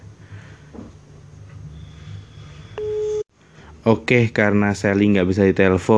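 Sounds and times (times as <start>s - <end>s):
low hum: 0.0s - 4.9s
steady electronic phone ringing tone: 2.8s - 3.2s
speech: 3.8s - 5.9s.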